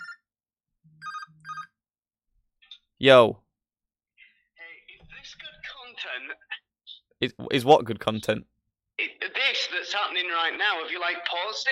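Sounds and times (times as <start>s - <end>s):
phone electronic ringtone for an incoming call: 0.0s - 1.8s
speech: 3.0s - 3.4s, 7.2s - 8.5s, 9.9s - 11.7s.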